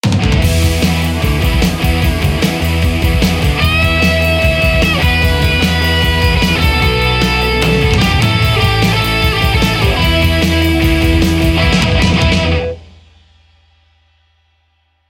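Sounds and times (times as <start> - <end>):
crunchy mid-gain electric guitar through amp simulators: 0.0 - 12.9.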